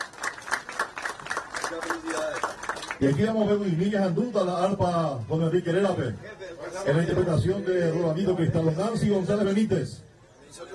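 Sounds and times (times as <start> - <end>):
crowd clapping in a steady quick rhythm: 0.0 - 3.3
speech: 1.7 - 10.7.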